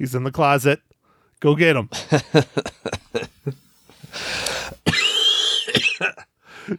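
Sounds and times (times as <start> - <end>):
speech: 0.0 - 3.6
laughter: 1.9 - 4.2
man coughing heavily: 2.0 - 6.7
man's wheezing strained breath: 2.0 - 6.7.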